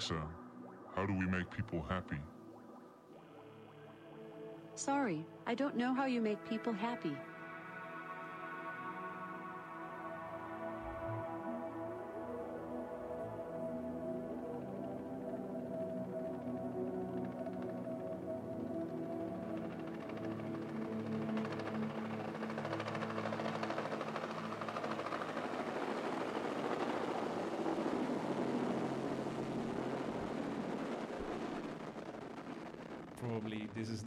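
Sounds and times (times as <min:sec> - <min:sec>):
speech: 0:00.1 - 0:00.4, 0:01.0 - 0:02.3, 0:04.8 - 0:07.3
dense musical backdrop of sustained tones: 0:02.3 - 0:33.0
helicopter whirring drone: 0:11.2 - 0:33.9.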